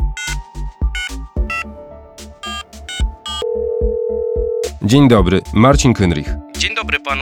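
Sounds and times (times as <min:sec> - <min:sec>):
electronic telephone beeps and chimes as a call goes out: 0:00.2 - 0:00.4, 0:01.0 - 0:01.7, 0:02.4 - 0:04.7
speech: 0:04.9 - 0:07.1.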